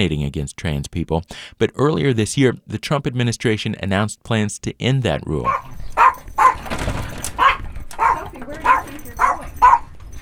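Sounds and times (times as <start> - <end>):
speech: 0.0 - 5.8
dogs barking at home: 5.4 - 10.2.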